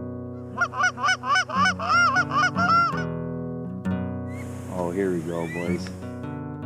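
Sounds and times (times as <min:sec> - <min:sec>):
geese honking: 0:00.5 - 0:03.1, 0:04.3 - 0:06.2
speech: 0:04.9 - 0:06.1.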